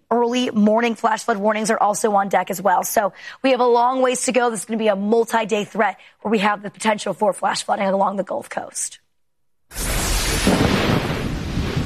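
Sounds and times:
speech: 0.4 - 9.0, 9.7 - 9.9
thunder rumble from a severe thunderstorm over the Atlanta metro area: 9.7 - 11.8.

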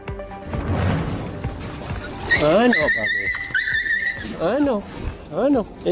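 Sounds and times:
stray puppy trapped in a storm drain crying and whimpering: 1.1 - 4.6
speech: 2.4 - 3.2, 4.2 - 5.9.

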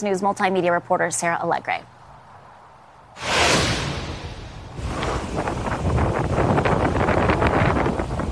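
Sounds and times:
speech: 0.0 - 2.0
storm wind roaring in Fort Walton Beach: 3.2 - 8.3.

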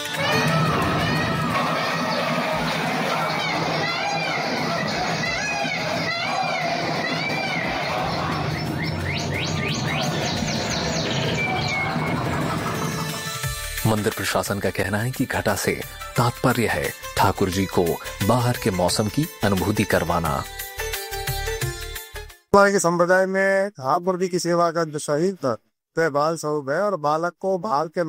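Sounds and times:
crowd murmur with indistinct voices in a temple: 0.2 - 13.3
many birds chirping in a temple: 1.4 - 13.5
speech: 13.9 - 20.6, 22.5 - 28.0.

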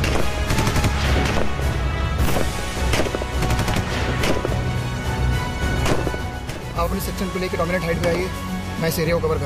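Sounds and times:
heavy gunfire during an armed firefight: 0.0 - 5.0, 5.6 - 6.7
speech: 6.9 - 9.4.

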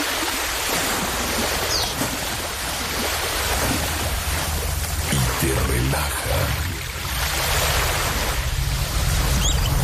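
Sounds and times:
ocean waves breaking on shore: 0.0 - 9.8
person speaking: 5.1 - 6.9.

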